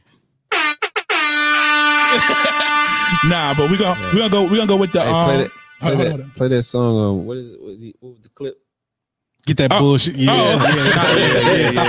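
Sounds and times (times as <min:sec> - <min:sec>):
air horn blasts: 0:00.5 - 0:06.6
laughter: 0:02.0 - 0:04.1, 0:10.2 - 0:11.8
speech: 0:02.1 - 0:08.6, 0:09.4 - 0:11.8.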